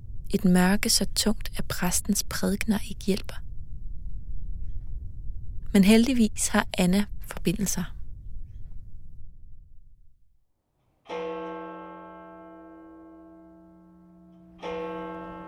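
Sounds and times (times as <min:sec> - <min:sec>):
low rumbling noise: 0:00.0 - 0:10.2
speech: 0:00.3 - 0:03.4, 0:05.7 - 0:08.0
clock bell striking twelve: 0:11.1 - 0:15.4.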